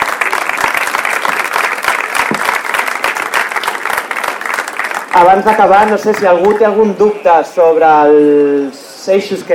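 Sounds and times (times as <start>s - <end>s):
audience applause: 0.0s - 6.5s
speech: 5.2s - 9.5s.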